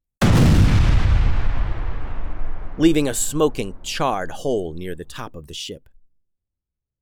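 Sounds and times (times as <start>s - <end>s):
cannon blast: 0.2s - 5.3s
speech: 2.8s - 5.9s.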